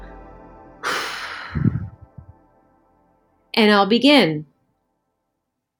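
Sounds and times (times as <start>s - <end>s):
deep breath in and out during a guided breathing exercise: 0.0s - 2.4s
speech: 3.6s - 4.5s.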